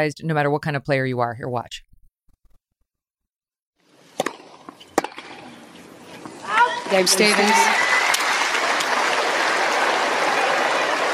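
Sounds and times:
speech: 0.0s - 1.9s, 6.9s - 7.9s
tennis racket slamming against the ground: 4.1s - 6.4s
crowd noise: 5.5s - 11.1s.

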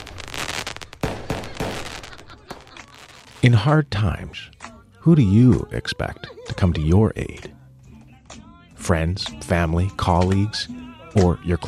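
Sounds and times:
fireworks crackling and banging at midnight: 0.0s - 3.7s
laughter: 1.2s - 3.7s, 5.3s - 7.1s
speech: 3.4s - 7.6s, 8.8s - 11.6s.

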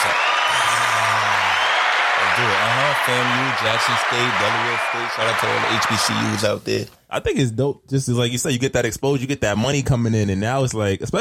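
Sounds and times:
whoop: 0.0s - 6.1s
crowd applause and cheering: 0.0s - 6.6s
speech: 3.1s - 11.1s.

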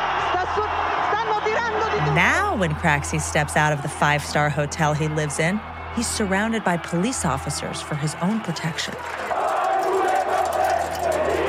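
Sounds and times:
large angry crowd shouting and jeering at a politician in Italy: 0.0s - 11.4s
speech: 2.2s - 9.3s.

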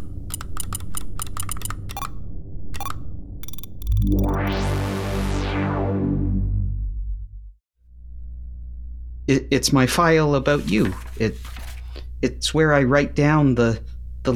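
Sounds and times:
password being typed on a computer keyboard: 0.3s - 2.1s
loud sustained harmonic drone: 1.9s - 13.0s
speech: 9.3s - 11.5s, 12.2s - 14.3s.

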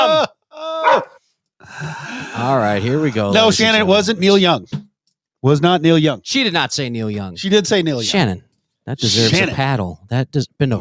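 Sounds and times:
dog barking: 0.8s - 1.2s
speech: 1.8s - 4.8s, 5.4s - 10.7s.

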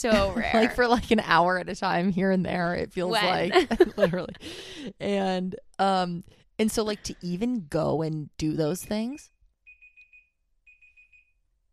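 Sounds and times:
speech: 0.0s - 9.4s
laughter: 3.1s - 4.5s
timer alarm beeping with sharp high electronic tones: 9.7s - 11.4s.

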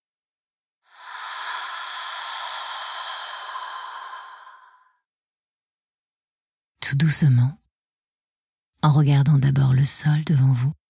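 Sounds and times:
long slow breath during a voice-yoga breathing exercise: 0.8s - 5.1s
speech: 6.9s - 7.6s, 8.8s - 10.8s.

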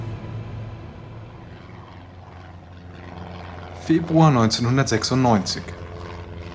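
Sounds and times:
propeller drone from three twin-engine Cessna Skymaster planes flying in formation: 0.0s - 6.5s
speech: 3.9s - 5.8s.

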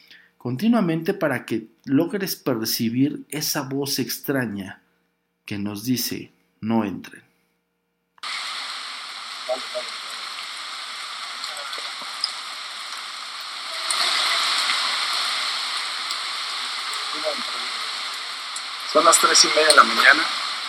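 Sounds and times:
speech: 0.4s - 4.8s, 5.5s - 7.3s, 19.0s - 20.4s
faint indistinct sounds: 8.2s - 20.6s
steady dense rain falling in an alley: 8.2s - 20.6s.

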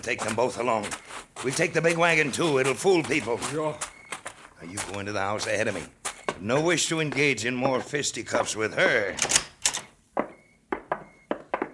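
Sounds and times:
speech: 0.0s - 3.9s, 4.6s - 9.5s
door opening as someone enters: 9.0s - 10.4s.

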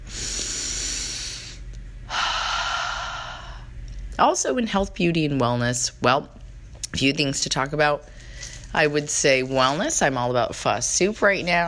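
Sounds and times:
deep breathing in and out: 0.0s - 3.8s
low steady hum: 0.0s - 11.6s
speech: 4.2s - 6.4s, 7.0s - 11.6s.

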